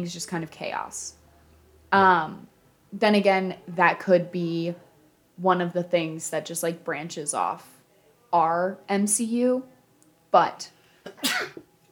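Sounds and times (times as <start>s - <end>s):
speech: 0.0s - 1.2s, 1.9s - 4.8s, 5.4s - 9.7s, 10.3s - 11.6s
sneeze: 11.1s - 11.6s.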